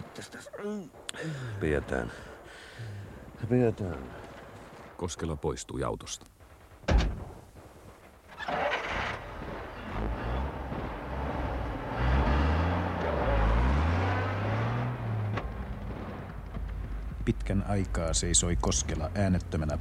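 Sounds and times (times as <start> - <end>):
speech: 0.2 - 4.2, 5.0 - 6.3, 17.3 - 19.7
car engine starting and revving as the car pulls away: 8.5 - 17.2.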